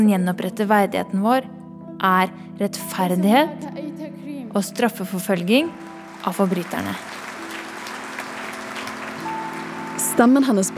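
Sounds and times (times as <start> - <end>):
speech: 0.0 - 7.2, 10.2 - 10.7
audience applause in a large room: 5.6 - 10.7.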